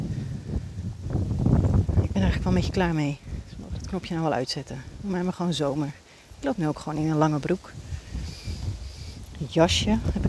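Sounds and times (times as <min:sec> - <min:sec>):
strong wind buffeting outdoors: 0:00.0 - 0:10.2
speech: 0:02.4 - 0:03.3, 0:03.9 - 0:07.8, 0:09.4 - 0:10.2.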